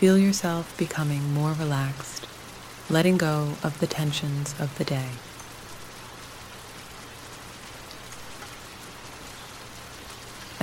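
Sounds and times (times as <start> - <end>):
speech: 0.0 - 2.3, 2.9 - 5.3
gentle rain falling: 0.0 - 10.6.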